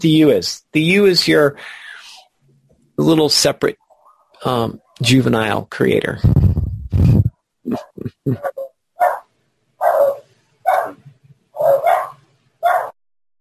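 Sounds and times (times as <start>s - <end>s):
speech: 0.0s - 1.8s, 3.0s - 3.8s, 4.4s - 8.5s
dog barking: 8.4s - 11.0s, 11.6s - 13.0s.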